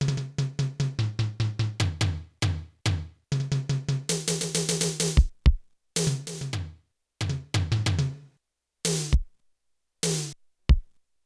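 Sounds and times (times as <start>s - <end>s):
Yamaha TX16W electronic drums: 0.0s - 8.2s, 8.9s - 9.3s.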